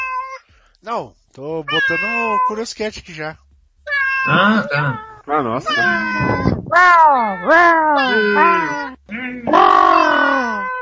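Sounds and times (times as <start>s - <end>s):
cat meowing: 0.0s - 0.4s, 1.7s - 2.6s, 3.9s - 10.8s
speech: 0.8s - 3.4s, 4.2s - 9.9s.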